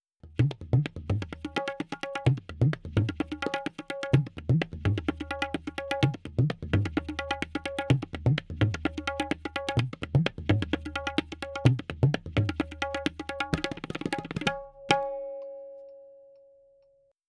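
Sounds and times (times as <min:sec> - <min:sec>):
tabla playing: 0:00.2 - 0:16.0.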